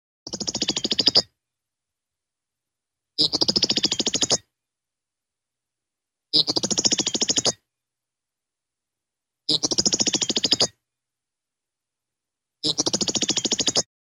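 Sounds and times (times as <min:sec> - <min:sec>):
lark: 0:00.3 - 0:01.3, 0:03.2 - 0:04.5, 0:06.3 - 0:07.6, 0:09.5 - 0:10.8, 0:12.6 - 0:13.9.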